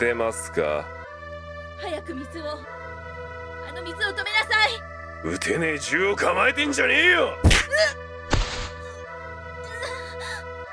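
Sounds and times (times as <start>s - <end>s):
speech: 0.0s - 1.0s, 1.8s - 2.8s, 3.7s - 8.0s
steady music: 0.0s - 10.7s
punch landing on a person during a confrontation: 7.4s - 7.7s, 8.3s - 8.8s.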